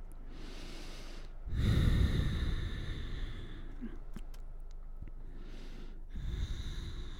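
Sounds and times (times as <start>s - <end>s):
person breathing slowly and deeply in a yoga pyramid pose: 0.0s - 4.4s, 5.0s - 7.1s.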